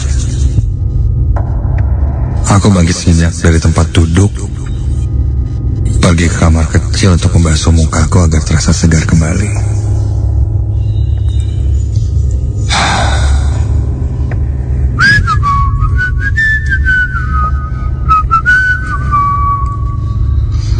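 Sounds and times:
steady low hum: 0.0 - 20.7
speech: 2.5 - 4.6, 6.0 - 9.8
person whistling a slow wavering tune in an empty room: 15.0 - 20.1.

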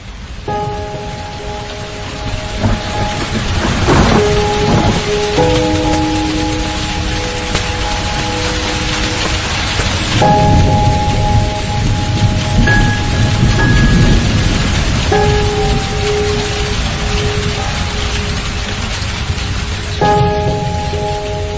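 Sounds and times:
very heavy rain outside an office at night: 0.0 - 21.5
soft sustained musical tones: 0.1 - 21.5
low rumbles: 0.5 - 21.5.

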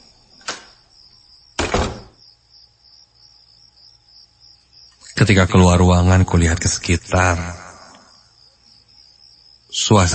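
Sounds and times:
faint steady insect-like whine: 0.0 - 10.1
room door closing with broadband thuds: 0.4 - 0.8, 1.6 - 2.2
speech: 5.2 - 7.6, 9.8 - 10.1.

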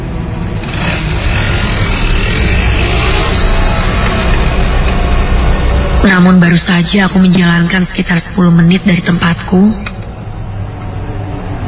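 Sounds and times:
motorcycle engine running: 0.0 - 6.0
speech: 6.0 - 9.9.

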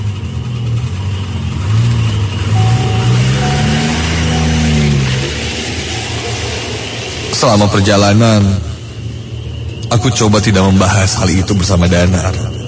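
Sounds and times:
car engine revving up and accelerating away: 0.0 - 9.9
speech: 7.4 - 8.7, 9.9 - 12.5.

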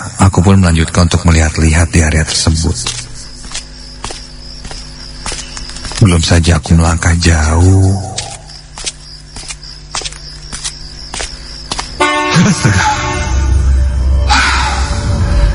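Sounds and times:
rumbling background: 0.0 - 15.5
speech: 0.4 - 3.1, 6.0 - 8.2, 12.5 - 12.9
footsteps: 1.3 - 6.3, 8.2 - 12.0
car horn blaring: 12.0 - 13.7.

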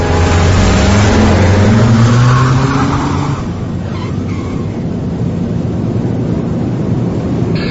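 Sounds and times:
car engine revving: 0.0 - 5.9
road noise: 0.0 - 7.6.

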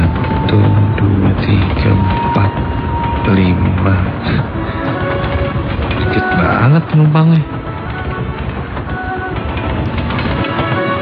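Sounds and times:
passenger train moving on rails: 0.0 - 11.0.

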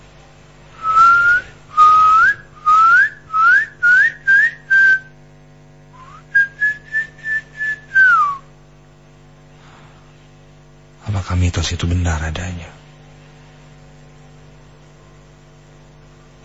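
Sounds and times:
person whistling a tune: 0.8 - 5.1, 6.0 - 8.5
speech: 11.7 - 12.8.

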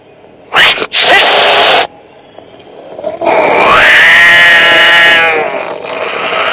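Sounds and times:
cat letting out a long angry meow: 0.6 - 1.9, 3.2 - 6.5.

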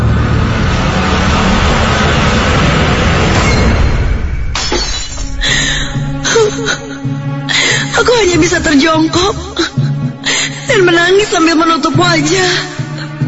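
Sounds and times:
loud low rumbling noise: 0.0 - 10.3
glass cup falling and shattering in a pantry: 4.6 - 5.3
speech: 11.1 - 12.8.

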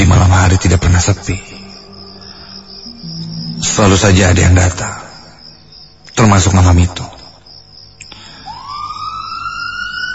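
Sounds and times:
speech: 0.6 - 1.6, 3.8 - 5.0, 6.2 - 7.1
ambulance siren arriving at a hospital emergency department at night: 8.4 - 10.1.

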